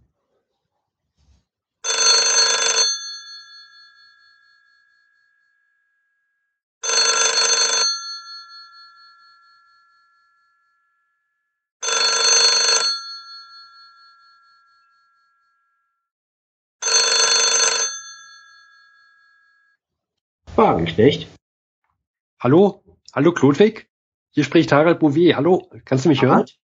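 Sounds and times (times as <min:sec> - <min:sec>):
metallic telephone bell ringing as a call is placed: 0:01.8 - 0:16.1, 0:16.8 - 0:19.8
speech: 0:20.6 - 0:21.3, 0:22.4 - 0:26.6.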